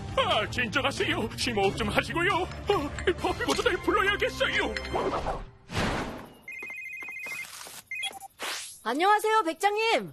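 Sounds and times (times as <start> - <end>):
speech: 0.4 - 5.5, 8.8 - 10.1
telephone ringing with an electronic trill: 6.5 - 8.3.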